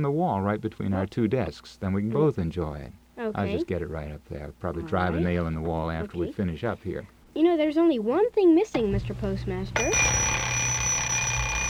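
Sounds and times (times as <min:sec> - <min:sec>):
speech: 0:00.0 - 0:10.4
novelty clock ringing with a high electric tone: 0:09.8 - 0:11.6.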